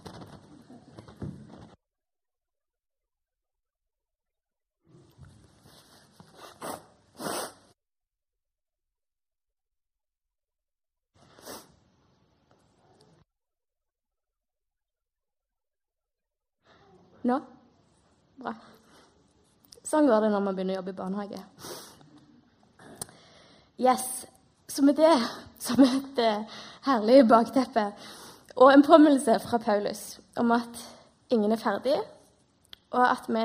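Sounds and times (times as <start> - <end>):
person blowing nose: 6.3 - 7.8, 11.2 - 11.8
speech: 17.2 - 17.6, 18.4 - 18.8, 19.9 - 21.8, 23.8 - 24.2, 24.8 - 32.2, 32.9 - 33.4.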